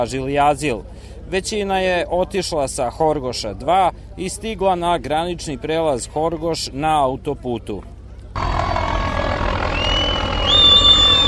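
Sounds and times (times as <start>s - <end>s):
speech: 0.0s - 8.5s
high police helicopter turbine whine: 8.4s - 11.2s
police helicopter rotor throb overhead: 8.4s - 11.2s.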